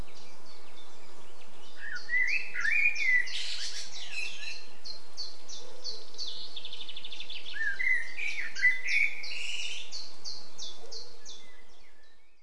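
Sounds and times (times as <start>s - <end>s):
common blackbird Turdus merula singing mellow fluty warbled phrases: 0.0s - 12.4s.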